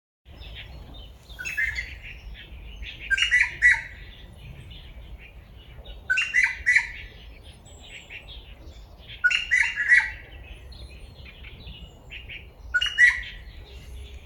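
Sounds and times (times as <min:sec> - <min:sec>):
grey treepie calls: 0:03.0 - 0:04.0, 0:06.1 - 0:07.1, 0:09.2 - 0:10.3, 0:12.8 - 0:13.4.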